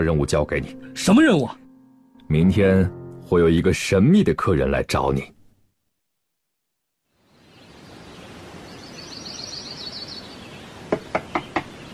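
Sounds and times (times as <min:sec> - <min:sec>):
speech: 0:00.0 - 0:01.6, 0:02.3 - 0:05.4
quiet room hiss: 0:07.1 - 0:11.9
faint birds chirping: 0:07.2 - 0:11.9
urgent knocking on a door: 0:10.9 - 0:11.8.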